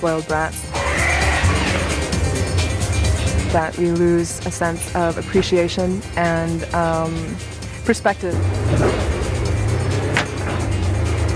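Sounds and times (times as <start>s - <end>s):
speech: 0.0s - 0.8s, 3.5s - 9.0s
car engine roaring as the car speeds along the road: 0.1s - 11.3s.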